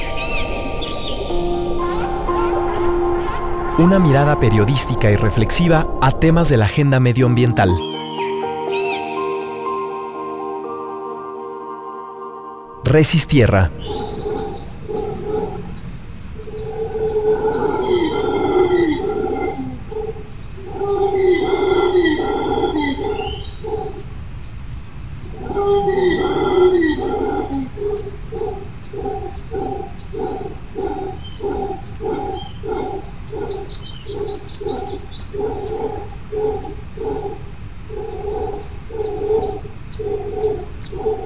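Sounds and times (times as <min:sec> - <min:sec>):
steady high insect hum: 0:00.0 - 0:10.0, 0:12.9 - 0:41.2
speech: 0:03.8 - 0:07.9, 0:12.9 - 0:14.0
howler monkeys calling in tropical forest: 0:13.7 - 0:24.1, 0:25.3 - 0:41.2.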